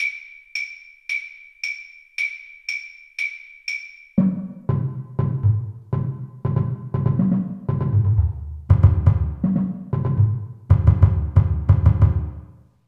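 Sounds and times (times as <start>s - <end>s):
bass drum: 4.2s - 12.5s.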